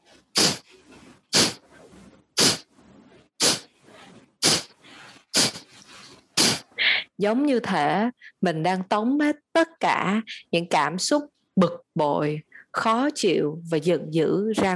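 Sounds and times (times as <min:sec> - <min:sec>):
forceful exhalations through the nose during a breathing exercise: 0:00.2 - 0:01.7, 0:02.4 - 0:02.7, 0:03.4 - 0:07.1
speech: 0:07.2 - 0:14.7.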